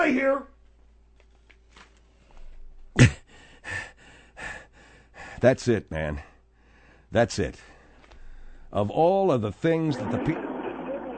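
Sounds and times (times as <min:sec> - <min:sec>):
speech: 0:00.0 - 0:00.5, 0:05.4 - 0:06.3, 0:07.1 - 0:07.7, 0:08.7 - 0:10.5
heavy rhythmic breathing: 0:02.1 - 0:08.8.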